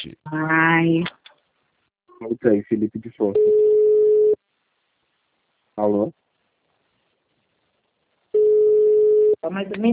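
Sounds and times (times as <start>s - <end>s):
speech: 0.0s - 1.2s, 2.2s - 3.7s, 5.8s - 6.2s, 9.4s - 9.9s
telephone call tone while a call is being placed: 3.4s - 4.4s, 8.4s - 9.4s.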